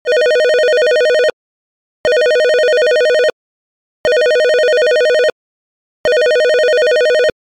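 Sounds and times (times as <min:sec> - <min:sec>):
classic 90's ringtone: 0:00.1 - 0:01.4, 0:02.1 - 0:03.4, 0:04.1 - 0:05.4, 0:06.1 - 0:07.4.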